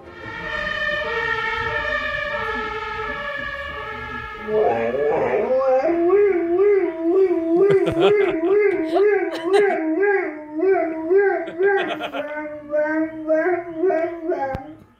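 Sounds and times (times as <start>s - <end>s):
dog howling in imitation of a police car siren: 0.0s - 14.9s
laughter: 7.3s - 10.2s, 10.9s - 12.8s.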